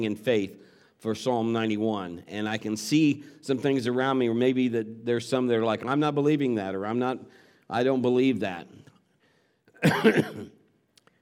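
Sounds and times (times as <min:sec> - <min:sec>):
speech: 0:00.0 - 0:08.9, 0:09.8 - 0:10.6
raspy cough: 0:09.8 - 0:10.6
throat clearing: 0:09.8 - 0:10.6.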